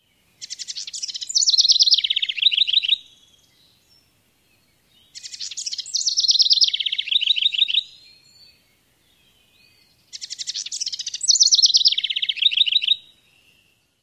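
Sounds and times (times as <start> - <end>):
house wren singing: 0.0 - 14.0.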